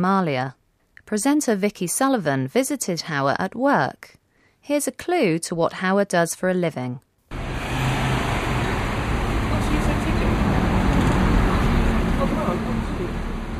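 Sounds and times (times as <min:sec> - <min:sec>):
speech: 0:00.0 - 0:07.1
bus engines idling in a bus garage in South London: 0:07.3 - 0:13.5.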